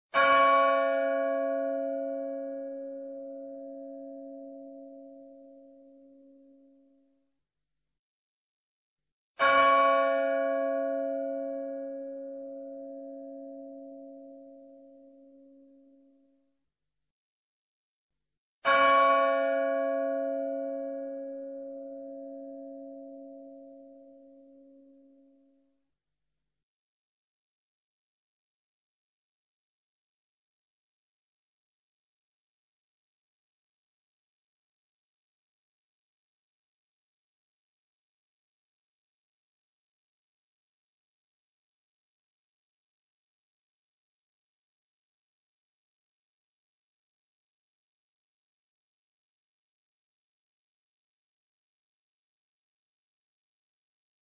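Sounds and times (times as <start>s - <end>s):
bell: 0.2s - 7.1s, 9.4s - 16.3s, 18.7s - 25.6s.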